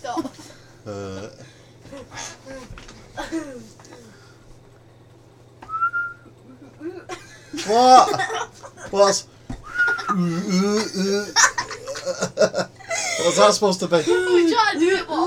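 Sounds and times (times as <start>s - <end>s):
steady low hum: 0.0s - 15.2s
person whistling: 5.6s - 6.3s, 9.6s - 10.2s
laughter: 6.5s - 14.5s
speech: 7.7s - 9.3s, 10.1s - 11.5s, 12.1s - 15.2s.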